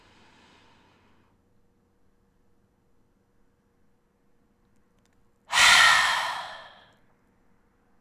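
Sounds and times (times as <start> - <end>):
long forceful breath during yoga breathing practice: 0.0 - 1.4, 5.5 - 7.0.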